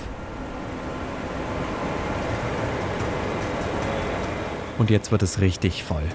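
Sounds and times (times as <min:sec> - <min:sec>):
night train rumbling into Hamburg main station in Germany: 0:00.0 - 0:06.1
speech: 0:04.8 - 0:06.1.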